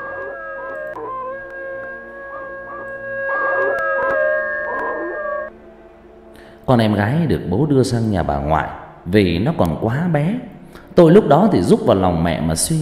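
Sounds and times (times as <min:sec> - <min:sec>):
neighbour's dog howling like a wolf: 0:00.0 - 0:05.5
speech: 0:06.7 - 0:12.8.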